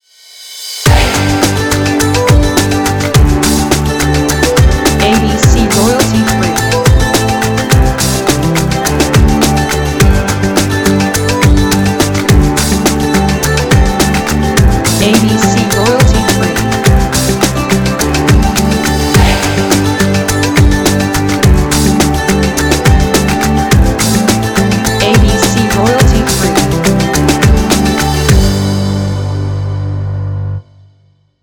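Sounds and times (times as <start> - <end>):
acoustic pop music: 0.8 - 30.3.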